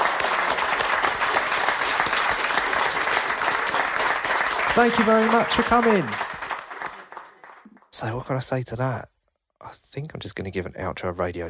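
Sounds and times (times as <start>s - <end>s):
live audience applause: 0.0s - 7.9s
speech: 4.8s - 6.2s, 8.0s - 11.4s.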